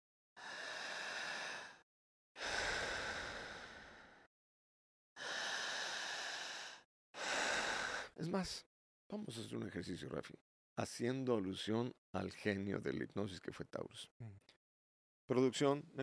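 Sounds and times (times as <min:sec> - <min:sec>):
deep slow breathing for a hypnosis exercise: 0:00.4 - 0:01.8, 0:02.4 - 0:04.3, 0:05.2 - 0:08.2
speech: 0:08.2 - 0:14.6, 0:15.3 - 0:16.0.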